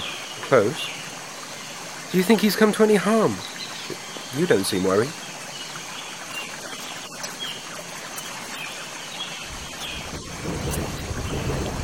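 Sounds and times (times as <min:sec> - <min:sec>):
rain: 0:00.0 - 0:11.8
wind: 0:00.0 - 0:11.8
speech: 0:00.5 - 0:01.0, 0:02.1 - 0:05.2
deep earthquake rumble: 0:09.5 - 0:11.8.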